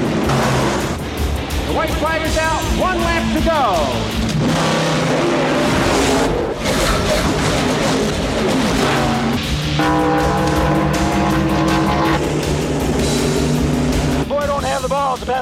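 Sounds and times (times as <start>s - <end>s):
race car engines roaring into turn four: 0.0s - 15.3s
speech: 1.8s - 5.3s, 14.8s - 15.4s
race car tire squeal: 5.6s - 12.3s.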